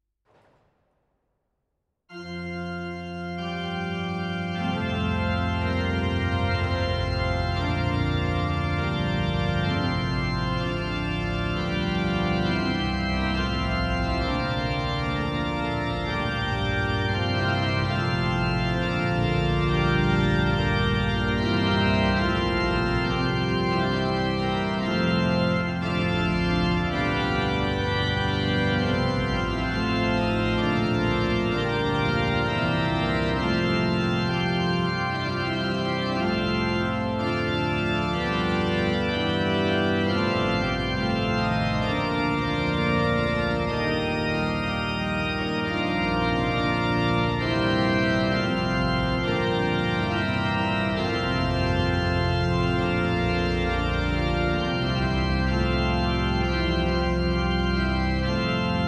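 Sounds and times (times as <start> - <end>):
organ improvisation on plenum: 2.1 - 58.8.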